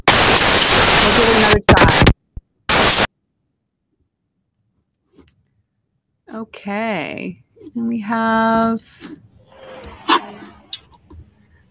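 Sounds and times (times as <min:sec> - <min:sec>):
harsh crackling static on a caller's phone line: 0:00.0 - 0:03.1
speech: 0:01.2 - 0:01.8, 0:06.3 - 0:09.9.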